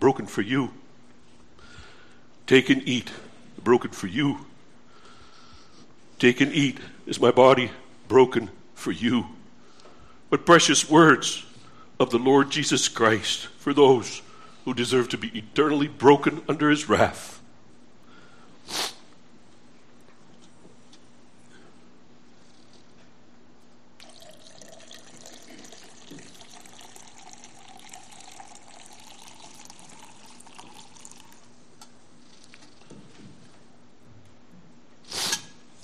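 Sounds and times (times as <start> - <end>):
speech: 0.0 - 0.8, 2.5 - 4.5, 6.2 - 9.4, 10.3 - 17.4, 18.7 - 19.0
liquid trickling into small communion cups: 24.0 - 31.6.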